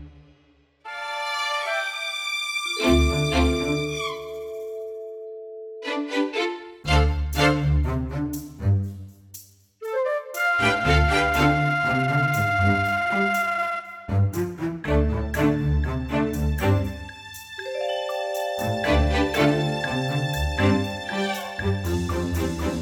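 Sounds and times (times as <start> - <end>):
symphonic orchestra playing: 0.9 - 5.0, 5.8 - 8.2, 10.6 - 17.0, 17.6 - 22.7.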